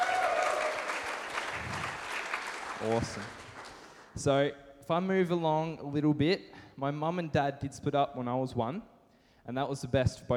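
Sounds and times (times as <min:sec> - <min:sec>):
audience clapping: 0:00.0 - 0:04.2
speech: 0:02.8 - 0:03.4, 0:04.2 - 0:10.3.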